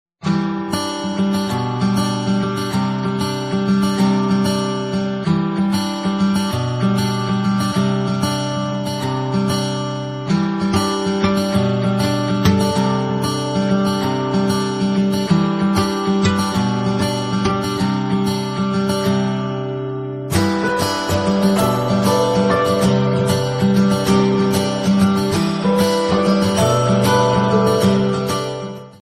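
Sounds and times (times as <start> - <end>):
guitar tune ringtone: 0.2 - 29.0.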